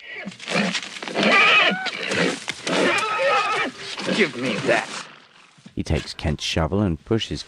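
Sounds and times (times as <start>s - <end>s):
horse whinnying and snorting inside a stable: 0.0s - 5.1s
speech: 4.2s - 5.0s, 5.8s - 7.4s.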